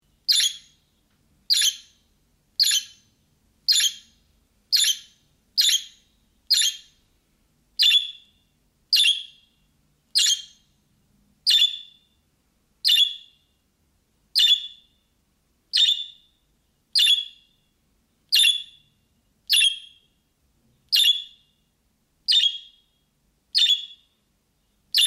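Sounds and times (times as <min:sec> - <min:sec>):
budgerigar chirping: 0:00.3 - 0:00.8, 0:01.5 - 0:02.0, 0:02.6 - 0:03.1, 0:03.7 - 0:07.0, 0:07.8 - 0:08.3, 0:08.9 - 0:09.5, 0:10.2 - 0:10.7, 0:11.5 - 0:12.0, 0:12.8 - 0:13.4, 0:14.4 - 0:14.9, 0:15.7 - 0:16.3, 0:17.0 - 0:17.5, 0:18.3 - 0:18.9, 0:19.5 - 0:20.1, 0:20.9 - 0:21.4, 0:22.3 - 0:22.9, 0:23.6 - 0:24.1.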